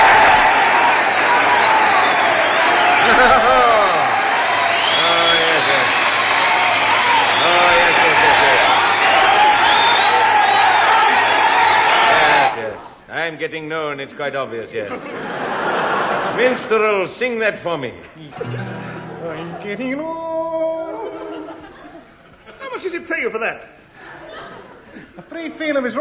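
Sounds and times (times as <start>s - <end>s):
large crowd applauding: 0.0s - 12.6s
whoops, shouts and cheers from a crowd: 0.0s - 12.6s
laughter: 2.6s - 6.1s, 6.8s - 9.5s, 14.8s - 16.7s, 18.3s - 22.8s, 24.0s - 25.4s
speech: 13.5s - 15.4s, 16.4s - 20.3s, 22.8s - 23.8s, 25.0s - 25.9s.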